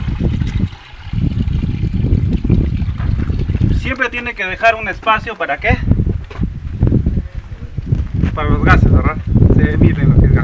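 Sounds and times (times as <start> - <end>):
water and whey pouring and sloshing into a bucket: 0.0 - 4.5
speech: 3.9 - 5.9, 8.4 - 10.4.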